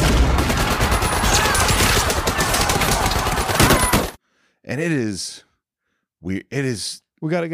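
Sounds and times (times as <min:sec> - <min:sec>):
machine gun fire from a film scene: 0:00.0 - 0:04.2
speech: 0:04.7 - 0:05.5, 0:06.2 - 0:07.5.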